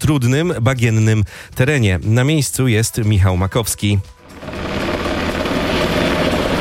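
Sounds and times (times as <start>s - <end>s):
speech: 0.1s - 4.7s
police Black Hawk helicopter scooping water to fight a forest fire: 4.2s - 6.5s.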